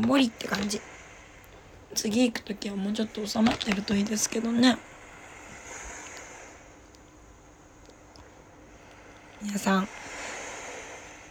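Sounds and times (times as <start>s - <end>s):
speech: 0.0s - 0.9s, 1.9s - 4.9s, 9.4s - 10.0s
ocean waves breaking on shore: 0.0s - 11.2s.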